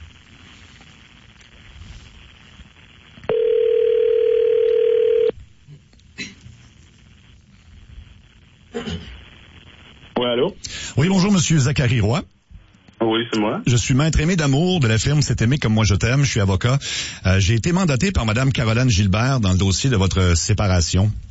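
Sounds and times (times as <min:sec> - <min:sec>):
telephone ringback tone after a number is dialled: 0:03.3 - 0:05.3
speech: 0:11.4 - 0:12.4, 0:13.1 - 0:21.2.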